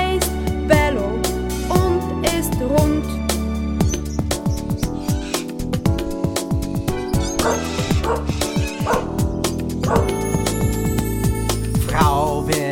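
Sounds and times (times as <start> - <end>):
bright music: 0.0 - 12.6
dog barking and yipping: 6.9 - 9.2, 9.8 - 10.2.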